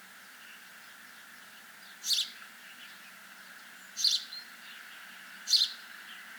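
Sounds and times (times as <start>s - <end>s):
Passer domesticus house sparrow chirps: 1.8s - 3.0s, 3.8s - 4.5s, 5.5s - 6.2s.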